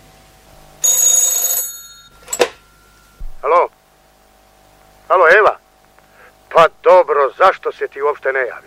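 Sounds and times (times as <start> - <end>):
telephone ringing: 0.8 - 3.6
speech: 5.1 - 5.6, 6.6 - 8.6.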